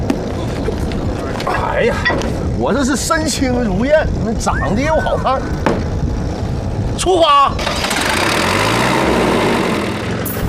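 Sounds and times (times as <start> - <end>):
tractor engine running while carrying riders toward the sea: 0.0 - 10.4
speech: 1.8 - 5.8, 7.0 - 8.2.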